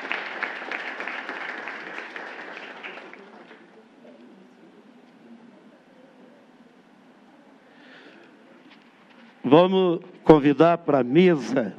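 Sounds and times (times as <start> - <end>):
crowd clapping: 0.0 - 3.8
faint murmuring: 3.1 - 9.4
speech: 9.5 - 11.7.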